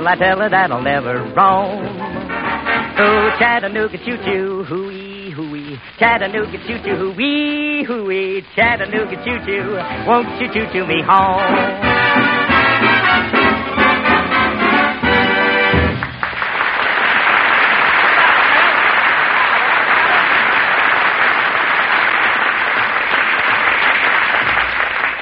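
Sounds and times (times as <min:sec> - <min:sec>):
speech: 0:00.0 - 0:02.4, 0:03.0 - 0:05.0, 0:05.9 - 0:13.4
big-band swing number: 0:00.0 - 0:16.6
loud dense applause on a record: 0:15.0 - 0:25.2.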